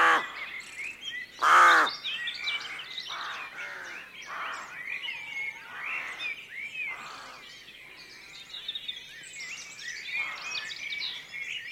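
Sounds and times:
rooks cawing hoarsely at a rookery at dawn: 0:00.0 - 0:00.3, 0:01.4 - 0:01.9, 0:02.6 - 0:04.7, 0:06.9 - 0:07.4
busy chatter of crow-like calls at a rookery: 0:00.0 - 0:00.4, 0:01.4 - 0:06.3, 0:06.9 - 0:07.4.

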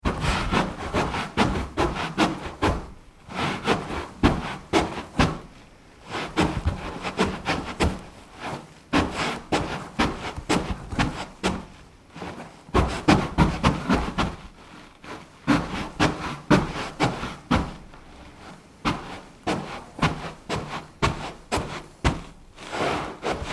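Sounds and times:
person wiping shoes on a door mat: 0:00.0 - 0:23.5.

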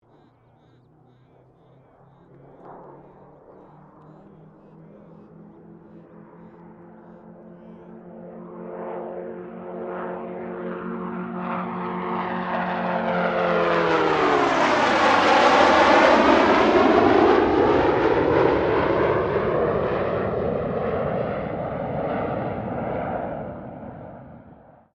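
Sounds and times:
Gloster Meteor F Mk8 fighter jet passing: 0:00.0 - 0:24.7.

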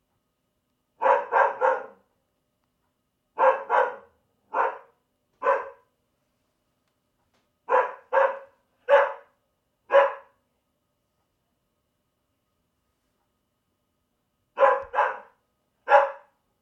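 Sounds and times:
dog barking: 0:01.0 - 0:02.1, 0:03.4 - 0:05.9, 0:07.7 - 0:10.4, 0:14.6 - 0:16.4.

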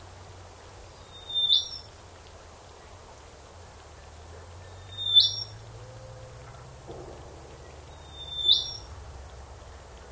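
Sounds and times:
low steady hum: 0:00.0 - 0:10.1
unidentified bird species calling in a swamp: 0:01.0 - 0:01.9, 0:04.6 - 0:05.6, 0:07.6 - 0:08.9.

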